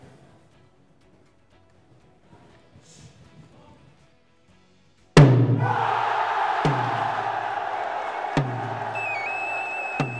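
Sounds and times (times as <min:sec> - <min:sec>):
deep booming thumps: 0:05.2 - 0:07.5, 0:08.4 - 0:09.0
large festival crowd cheering and roaring: 0:05.3 - 0:10.1.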